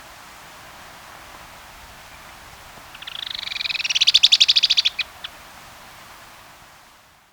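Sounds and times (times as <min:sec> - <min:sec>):
stout-billed cinclodes song trill in Ecuador: 0:02.9 - 0:05.4.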